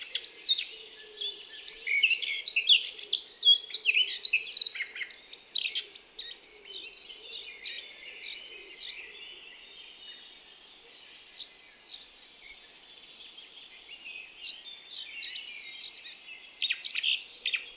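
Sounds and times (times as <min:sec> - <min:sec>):
Eurasian blackcap Sylvia atricapilla song: 0:00.0 - 0:17.7.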